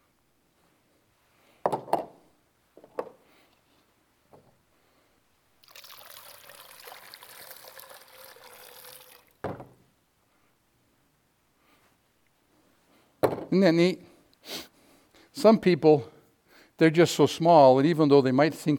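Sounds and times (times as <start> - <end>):
water pouring steadily through a funnel: 5.6 - 9.4
sharp knocks and clunks: 9.4 - 9.8, 13.2 - 13.5
speech: 13.5 - 14.7, 15.4 - 16.1, 16.8 - 18.7.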